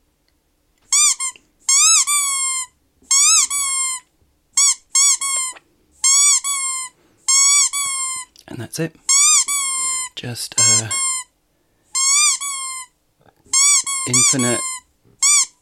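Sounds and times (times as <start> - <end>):
squeaky dog toy squeaking shrilly: 0.9 - 8.3, 9.1 - 15.6
speech: 8.6 - 9.0, 10.2 - 11.0, 14.1 - 14.7.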